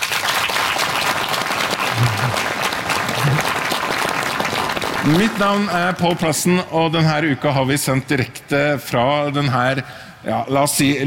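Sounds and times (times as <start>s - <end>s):
large outdoor crowd applauding in front of Nidaros Cathedral in Trondheim: 0.0s - 6.4s
speech: 5.0s - 11.0s.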